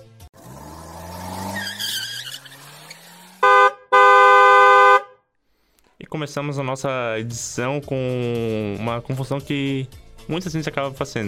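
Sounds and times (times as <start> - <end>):
engine revving and rising in pitch: 0.0 - 4.8
tires screeching: 0.4 - 4.8
car horn honking: 3.4 - 5.3
speech: 6.1 - 11.2.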